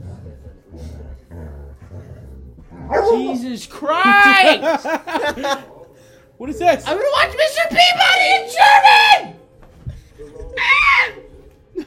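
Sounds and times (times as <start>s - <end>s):
low rumbling dog growl: 0.0s - 3.4s
speech: 3.1s - 5.7s, 6.4s - 9.3s
laughter: 4.0s - 5.9s.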